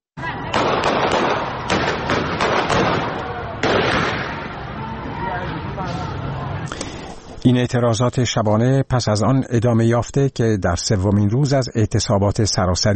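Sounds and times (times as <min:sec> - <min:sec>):
commotion: 0:00.2 - 0:07.7
gunshots fired during street protest: 0:00.5 - 0:04.7
crowd murmuring at street protest: 0:01.4 - 0:07.5
speech: 0:07.6 - 0:12.9.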